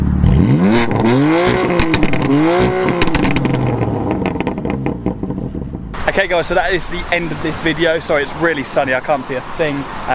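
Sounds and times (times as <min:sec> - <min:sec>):
BMW M4 Competition engine revving while parked: 0:00.0 - 0:10.1
BMW M4 Competition exhaust pops and crackles: 0:01.5 - 0:09.1
speech: 0:06.2 - 0:10.1.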